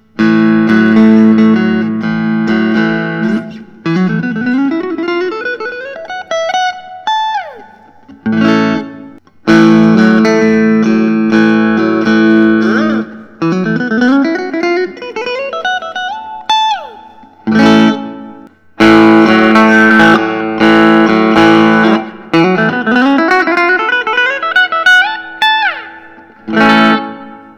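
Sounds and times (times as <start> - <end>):
guitars playing: 0.0 - 27.5.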